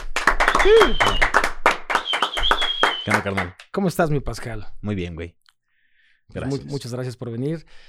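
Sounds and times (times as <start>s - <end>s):
small audience applauding a guest: 0.0s - 3.6s
people whooping and calling out: 0.5s - 3.2s
speech: 0.6s - 1.4s, 3.1s - 5.4s, 6.3s - 7.8s.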